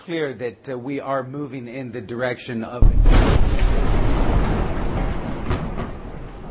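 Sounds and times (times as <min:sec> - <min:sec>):
speech: 0:00.0 - 0:04.6
massive explosion to the north of a building: 0:02.8 - 0:06.4
sharp cracks: 0:02.8 - 0:06.4.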